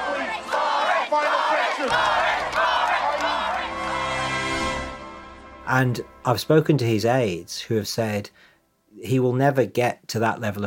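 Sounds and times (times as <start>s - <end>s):
rally crowd cheering: 0.0s - 5.1s
speech: 5.7s - 10.6s.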